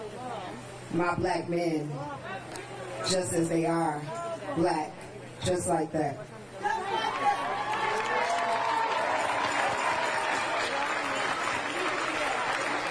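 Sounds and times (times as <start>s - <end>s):
speech: 0.9s - 2.3s, 3.0s - 6.3s
people cheering: 6.6s - 12.8s
crowd clapping: 7.2s - 12.8s.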